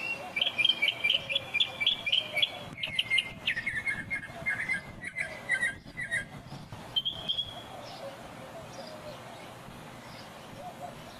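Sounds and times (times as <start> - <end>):
Northern mockingbird singing chirped phrases: 0.0 - 11.1.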